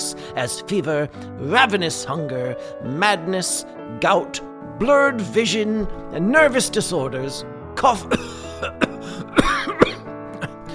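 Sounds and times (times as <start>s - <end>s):
speech: 0.4s - 8.8s
throat clearing: 8.1s - 10.6s
person coughing: 8.1s - 10.7s.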